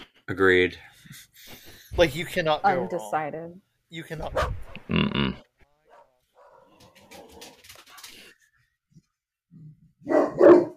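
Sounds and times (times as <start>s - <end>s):
speech: 0.3s - 5.5s
dog barking: 4.3s - 4.7s, 5.9s - 6.8s, 10.0s - 10.7s.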